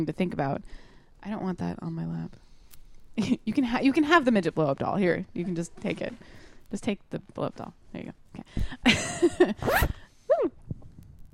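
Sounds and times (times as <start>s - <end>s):
speech: 0.0s - 2.4s, 3.2s - 10.6s
clothing zipper being pulled: 9.4s - 10.0s.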